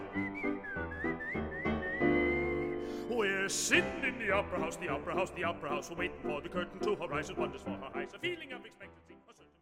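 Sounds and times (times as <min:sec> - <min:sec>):
person whistling a bright tune: 0:00.0 - 0:03.3
speech: 0:03.5 - 0:08.9.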